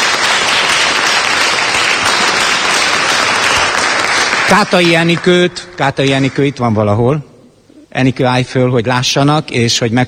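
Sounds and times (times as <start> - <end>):
audience applause in a church: 0.0 - 5.5
speech: 4.5 - 7.3, 8.0 - 10.0.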